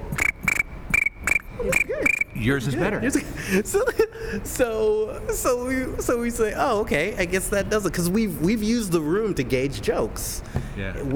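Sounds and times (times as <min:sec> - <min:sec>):
voice imitating chirping crickets: 0:00.0 - 0:02.4
laughter: 0:01.5 - 0:05.8
speech: 0:02.4 - 0:11.1.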